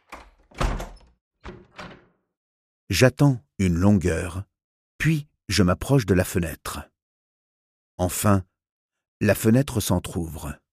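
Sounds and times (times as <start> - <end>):
door slammed shut: 0.0 - 2.2
speech: 2.9 - 6.9, 8.0 - 8.5, 9.2 - 10.6.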